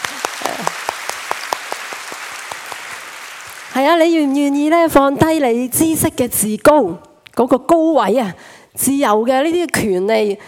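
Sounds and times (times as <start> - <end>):
audience applauding: 0.0 - 4.9
louder evenly spaced claps in a quick rhythm: 0.0 - 5.0
speech: 3.8 - 10.4.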